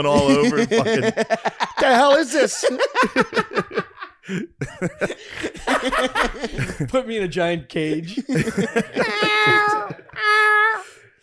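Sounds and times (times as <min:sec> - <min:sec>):
laughter: 0:00.0 - 0:07.0, 0:07.8 - 0:10.9
speech: 0:00.0 - 0:10.9
person imitating a howling cat with nasal yowls: 0:09.1 - 0:10.8.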